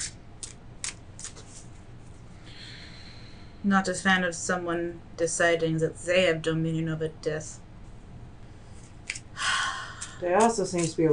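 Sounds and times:
deck of cards being shuffled: 0:00.0 - 0:01.8, 0:10.4 - 0:11.1
speech: 0:03.6 - 0:07.6, 0:10.2 - 0:11.1.

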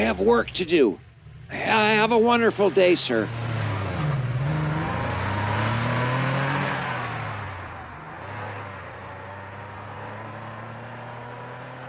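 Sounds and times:
speech: 0:00.0 - 0:03.6
patrol car engine idling and pulling away: 0:00.0 - 0:11.8.

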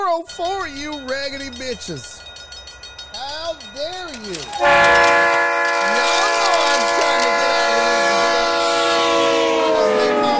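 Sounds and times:
speech: 0:00.2 - 0:02.2, 0:03.5 - 0:06.1
faint sliding tones: 0:00.4 - 0:08.6
train horn sound effect used as a hype train alert: 0:04.6 - 0:10.3.

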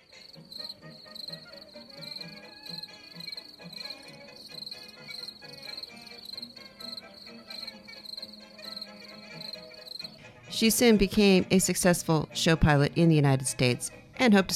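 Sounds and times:
crickets chirping in a high-pitched rhythmic trill: 0:00.0 - 0:10.2
speech: 0:10.6 - 0:14.5.

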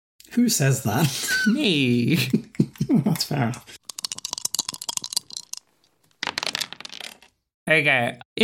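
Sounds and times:
speech: 0:00.4 - 0:03.8, 0:07.7 - 0:08.4
dice being shaken: 0:03.8 - 0:07.3.

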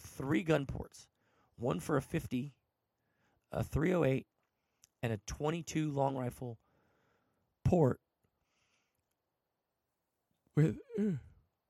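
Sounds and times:
speech: 0:00.2 - 0:02.6, 0:03.5 - 0:04.3, 0:05.0 - 0:06.6, 0:07.7 - 0:08.0, 0:10.6 - 0:11.3
big drawn-out yawn from one person with a groan: 0:10.6 - 0:11.4.

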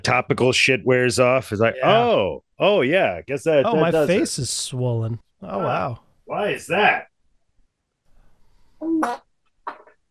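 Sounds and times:
speech: 0:00.0 - 0:07.1, 0:08.8 - 0:09.2
short buzzy fart: 0:08.8 - 0:10.0.

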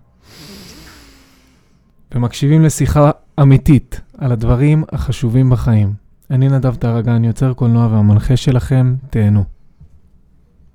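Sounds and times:
long deep breath drawn in: 0:00.1 - 0:02.0
speech: 0:02.2 - 0:09.5.

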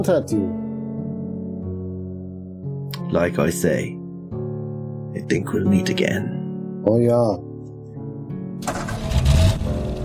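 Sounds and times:
speech: 0:00.0 - 0:00.6, 0:03.1 - 0:04.0, 0:05.2 - 0:07.5
car engine cranking and starting: 0:08.6 - 0:10.0.

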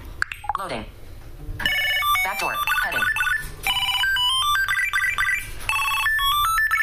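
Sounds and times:
speech: 0:00.6 - 0:01.7, 0:02.4 - 0:03.5
Bluetooth Tile tracker find ringtone triggered from a phone: 0:01.6 - 0:06.8.

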